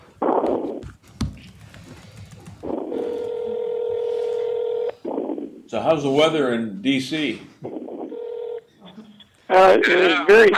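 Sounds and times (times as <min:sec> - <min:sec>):
steady fairly loud telephone tone: 0:02.6 - 0:05.4, 0:07.7 - 0:08.7
telephone keypad dialing tones: 0:02.9 - 0:05.0
speech: 0:05.7 - 0:07.5, 0:09.5 - 0:10.5.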